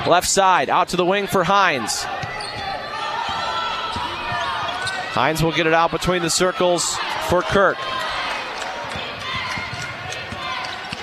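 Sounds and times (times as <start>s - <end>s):
crowd noise at a women's basketball game: 0.0s - 11.0s
speech: 0.1s - 2.4s, 5.2s - 8.1s
basketball dribbled during a women's basketball game: 2.1s - 5.2s, 8.6s - 11.0s.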